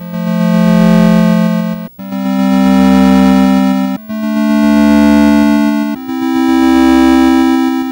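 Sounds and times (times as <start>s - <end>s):
Atari 2600 8-bit chiptune synth harmony: 0.0s - 7.9s.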